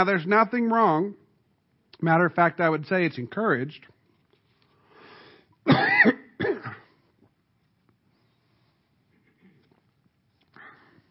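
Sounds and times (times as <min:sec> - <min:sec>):
speech: 0:00.0 - 0:01.2, 0:02.0 - 0:03.9, 0:05.6 - 0:06.2
person coughing harshly: 0:05.7 - 0:07.0.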